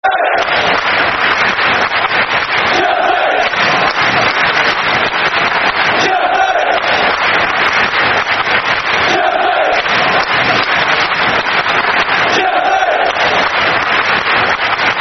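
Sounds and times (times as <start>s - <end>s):
football crowd chanting: 0.0s - 0.7s, 2.6s - 3.9s, 5.8s - 7.2s, 9.0s - 10.4s, 12.2s - 13.5s
football crowd clapping: 0.0s - 15.0s.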